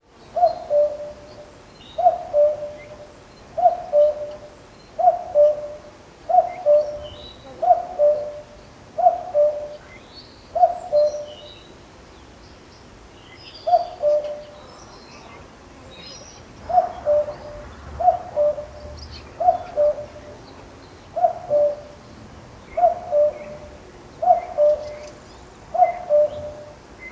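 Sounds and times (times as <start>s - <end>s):
cuckoo calling: 0.4s - 1.3s, 2.0s - 9.8s, 13.7s - 14.6s, 16.3s - 27.1s.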